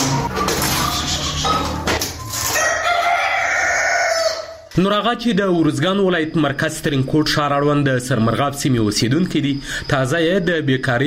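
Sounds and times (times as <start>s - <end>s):
domestic chickens clucking in a home flock in Tarinkot: 0.0s - 4.7s
rooster crowing at a home flock in Tarinkot: 0.8s - 4.7s
speech: 4.8s - 11.0s.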